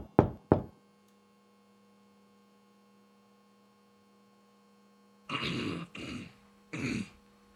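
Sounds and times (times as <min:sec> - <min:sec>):
knocking on a door: 0:00.0 - 0:00.8
low electrical hum: 0:00.0 - 0:07.5
throaty bursts: 0:05.3 - 0:07.2.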